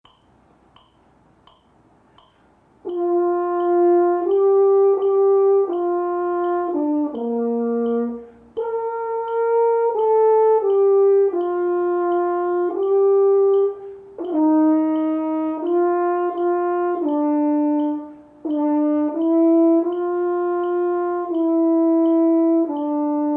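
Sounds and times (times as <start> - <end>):
horn playing a national anthem: 2.9 - 23.3.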